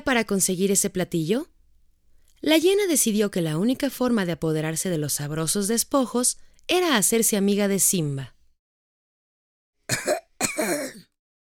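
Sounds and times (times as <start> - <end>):
speech: 0.0 - 1.5, 2.4 - 8.4
short dry rasping cough: 9.9 - 11.1.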